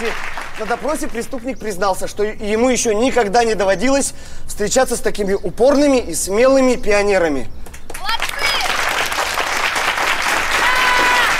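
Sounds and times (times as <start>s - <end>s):
crowd applause: 0.0s - 1.0s, 8.0s - 11.3s
speech: 0.0s - 7.6s
voices cheering: 8.0s - 11.3s.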